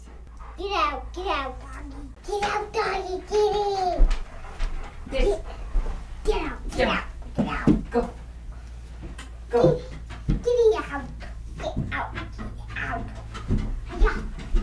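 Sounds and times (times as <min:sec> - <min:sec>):
people speaking: 0:00.0 - 0:04.2, 0:05.0 - 0:08.3, 0:09.5 - 0:14.6
dog panting: 0:00.0 - 0:14.6
steady low hum: 0:00.0 - 0:14.6
child's voice: 0:00.5 - 0:04.2, 0:05.1 - 0:05.5, 0:06.2 - 0:08.1, 0:09.5 - 0:13.3, 0:14.0 - 0:14.4.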